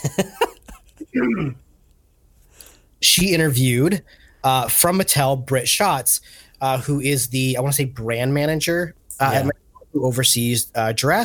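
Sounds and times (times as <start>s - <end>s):
speech: 0.1s - 0.4s, 1.2s - 1.6s, 3.0s - 11.2s
rough vocal sound like throat clearing: 1.0s - 1.6s
sharp coughs: 1.0s - 1.6s.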